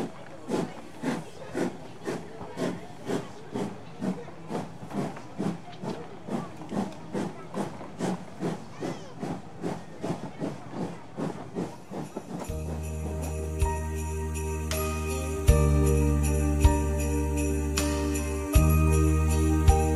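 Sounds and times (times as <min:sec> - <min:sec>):
steam train chuffing while starting to move: 0:00.0 - 0:19.9.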